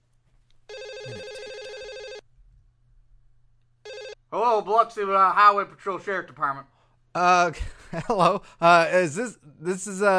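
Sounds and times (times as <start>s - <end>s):
telephone ringing on an outgoing call: 0.7s - 2.2s, 3.8s - 4.2s
speech: 4.3s - 10.1s.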